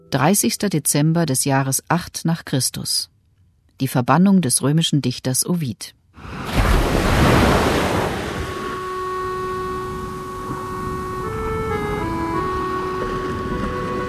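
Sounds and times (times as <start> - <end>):
speech: 0.1 - 3.1, 3.8 - 6.6
sea waves rushing: 6.2 - 11.9
sustained droning musical tones: 8.1 - 14.0.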